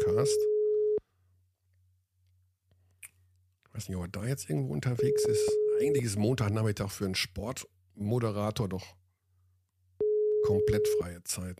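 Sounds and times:
telephone line tone while placing a call: 0.0 - 1.0, 5.0 - 6.1, 10.0 - 11.0
speech: 0.2 - 0.5, 3.8 - 9.0, 10.4 - 11.5.

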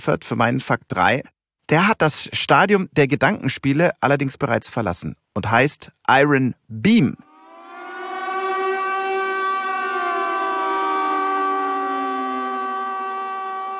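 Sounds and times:
speech: 0.0 - 7.3
air raid siren wailing: 7.2 - 13.7.

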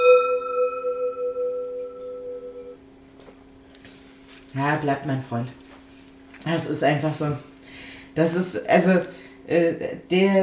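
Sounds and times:
gong struck to signal drinking: 0.0 - 2.8
speech: 4.6 - 5.6, 6.4 - 7.5, 8.2 - 10.4.

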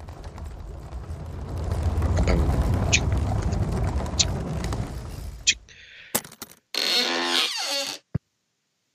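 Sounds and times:
low rumbling handling noise: 0.0 - 5.7
cupboard door creaking open with a wavering squeak: 6.7 - 8.1.

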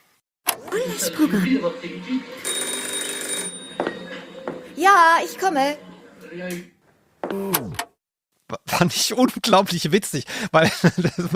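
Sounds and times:
room noise: 0.5 - 7.8
murmured voices: 0.6 - 2.8, 3.7 - 6.7
laughter: 0.7 - 2.5, 10.6 - 11.3
speech: 0.8 - 2.5, 4.8 - 6.7, 7.3 - 7.7, 8.6 - 11.3
telephone bell ringing at home: 0.9 - 5.9.

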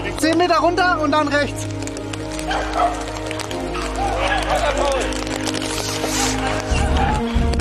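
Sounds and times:
speech: 0.1 - 1.8, 2.5 - 3.2
hunting dogs barking and yelping while chasing a wounded game animal: 2.3 - 5.3, 5.9 - 7.4.

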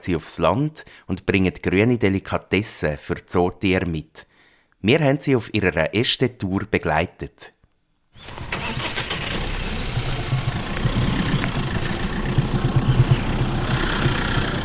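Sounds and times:
speech: 0.0 - 7.6, 8.2 - 8.5
truck engine idling: 8.2 - 14.6.

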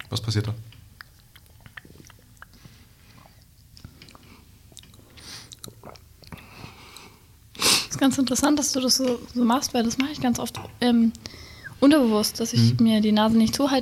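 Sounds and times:
speech: 0.1 - 0.8, 8.0 - 13.8
wet mouth clicks and smacks: 0.8 - 7.1
person sipping and swallowing: 1.0 - 7.1.

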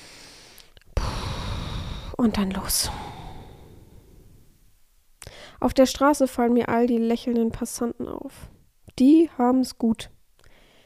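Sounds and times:
deep breath out: 0.0 - 2.2, 2.8 - 4.5, 5.2 - 5.6, 10.4 - 10.8
speech: 2.2 - 3.0, 5.6 - 10.1.

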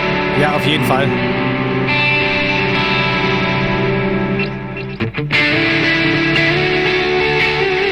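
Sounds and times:
distorted electric guitar played through delay effect: 0.0 - 7.9
speech: 0.4 - 2.0.

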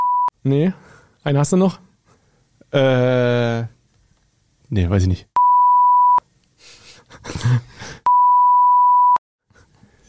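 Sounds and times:
speech: 0.4 - 1.9, 2.7 - 3.8, 4.7 - 5.3, 7.3 - 8.0
electronic tones on a phone line: 5.4 - 6.2, 8.1 - 9.2.

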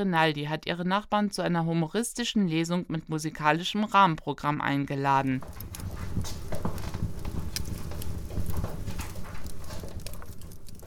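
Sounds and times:
speech: 0.0 - 6.4
fire crackling and popping in a living-room fireplace: 5.4 - 10.8.

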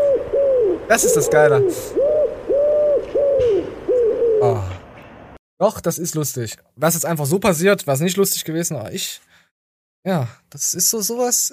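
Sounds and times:
pigeon cooing in low rounded calls: 0.0 - 4.9
speech: 0.9 - 2.0, 5.6 - 9.4, 10.0 - 11.5.

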